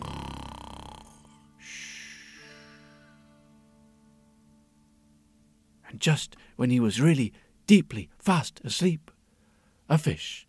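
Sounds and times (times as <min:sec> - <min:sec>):
sleeping donkey snoring: 0:00.0 - 0:01.4
speech: 0:05.9 - 0:09.1, 0:09.9 - 0:10.4.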